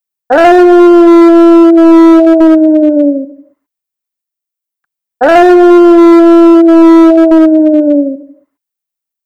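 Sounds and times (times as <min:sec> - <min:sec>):
wolf howling: 0:00.3 - 0:03.4, 0:05.2 - 0:08.3.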